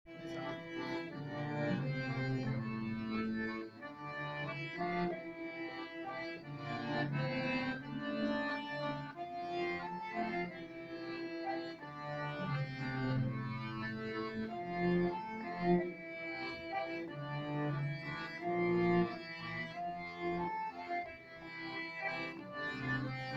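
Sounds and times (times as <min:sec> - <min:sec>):
cello: 0:00.1 - 0:23.3.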